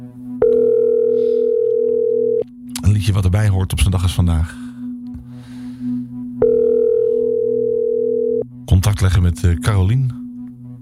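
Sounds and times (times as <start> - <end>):
telephone dial tone while placing a call: 0.4 - 2.5, 6.4 - 8.4
speech: 3.0 - 4.6, 8.8 - 10.2.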